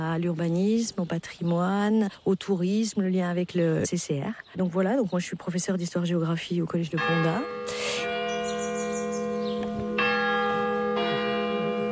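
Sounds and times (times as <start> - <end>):
speech: 0.0 - 8.2
church bell tolling the quarter hour: 6.8 - 11.9.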